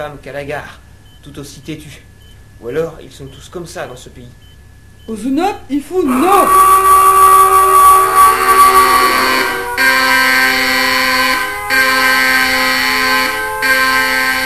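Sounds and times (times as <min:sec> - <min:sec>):
speech: 0:00.0 - 0:07.0
loud piercing buzzing alarm ringing: 0:06.1 - 0:14.4.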